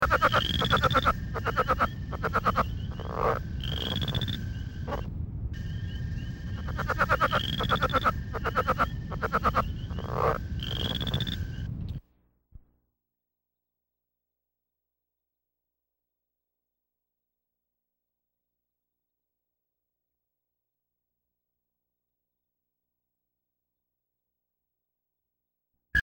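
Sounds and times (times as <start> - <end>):
Southern Leopard Frog calling: 0.0 - 11.7.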